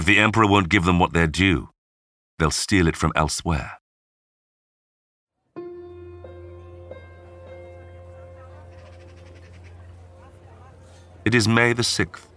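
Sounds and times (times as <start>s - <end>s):
speech: 0.0s - 1.7s, 2.4s - 3.8s, 11.2s - 12.3s
church bells ringing in Rome: 5.6s - 12.0s
birds chirping and twittering at sunrise: 5.9s - 12.3s.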